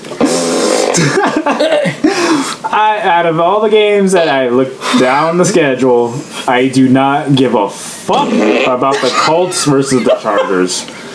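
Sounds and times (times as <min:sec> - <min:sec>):
fart noises made with the mouth: 0:00.0 - 0:01.4, 0:08.1 - 0:09.7
laughter: 0:01.0 - 0:02.4, 0:08.1 - 0:10.9
speech: 0:01.0 - 0:11.1.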